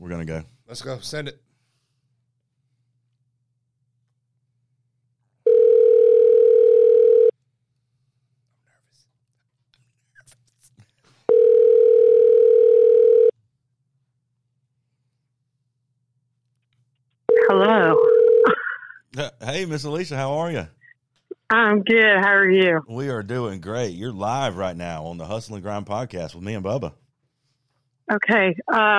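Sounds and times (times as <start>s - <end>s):
speech: 0.0s - 1.5s, 17.6s - 18.2s, 19.2s - 20.8s, 21.5s - 27.0s, 28.1s - 28.9s
ringback tones on an outgoing phone call: 5.4s - 7.3s, 11.3s - 13.3s, 17.3s - 18.5s.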